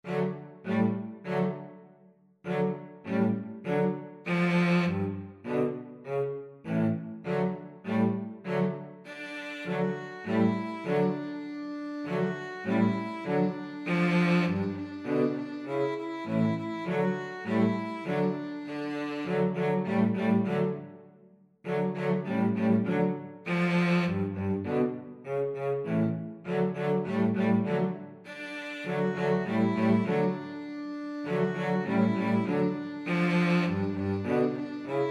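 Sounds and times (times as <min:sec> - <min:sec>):
two cellos: 0:00.0 - 0:35.0
two violins: 0:00.0 - 0:35.0.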